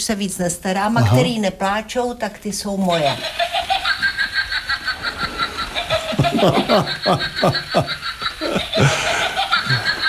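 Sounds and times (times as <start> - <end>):
speech: 0.0 - 3.6, 6.4 - 8.1
witch cackle from a battery-powered witch figure: 3.0 - 10.0.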